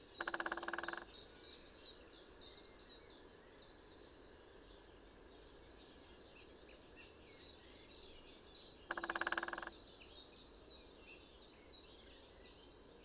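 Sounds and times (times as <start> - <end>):
great spotted woodpecker drumming: 0.2 - 1.1, 8.9 - 9.7.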